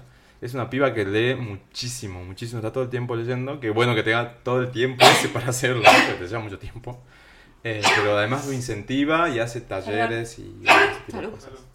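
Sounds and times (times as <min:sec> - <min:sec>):
speech: 0:00.4 - 0:11.7
loud sneeze caused by an allergy: 0:05.0 - 0:06.2, 0:07.8 - 0:08.2, 0:10.6 - 0:11.1.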